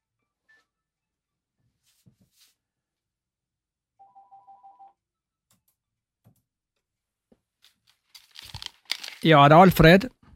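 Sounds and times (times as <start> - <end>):
telephone ringing with electronic trill: 4.0 - 5.0
handling noises and clicks: 7.6 - 9.9
speech: 9.2 - 10.2.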